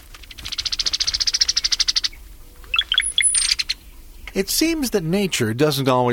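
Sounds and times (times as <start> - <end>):
brown-headed cowbird rattling chatter: 0.0 - 3.8
brown-headed cowbird liquid gurgling chirps: 0.3 - 4.3
speech: 4.4 - 6.1.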